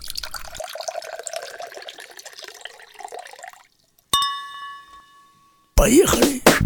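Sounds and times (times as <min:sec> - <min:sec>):
drink splashing into a glass: 0:00.0 - 0:04.0
bright glass clink: 0:04.1 - 0:05.8
speech: 0:05.8 - 0:06.5.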